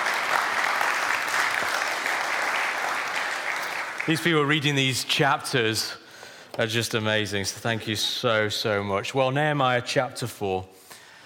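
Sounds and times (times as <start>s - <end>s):
audience applause for a Bible reader: 0.0s - 4.8s
speech: 4.0s - 6.0s, 6.6s - 10.8s.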